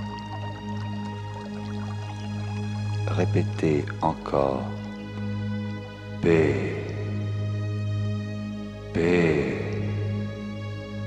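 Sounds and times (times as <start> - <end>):
soft trickling and dripping water: 0.0 - 8.7
sustained humming drone: 0.0 - 11.0
speech: 3.1 - 4.8, 6.2 - 6.8, 9.0 - 9.6.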